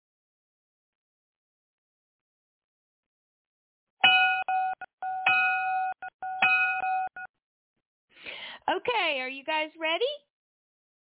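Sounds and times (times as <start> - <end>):
electronic bell ringing in bright buzzing bursts: 4.0 - 7.3
speech: 8.7 - 10.2.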